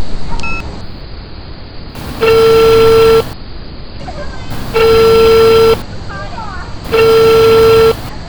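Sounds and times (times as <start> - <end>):
constant hiss: 2.0 - 3.4, 4.5 - 5.8, 6.9 - 8.1
telephone keypad tones dialing emergency services: 2.0 - 3.4, 4.5 - 5.8, 6.9 - 8.1.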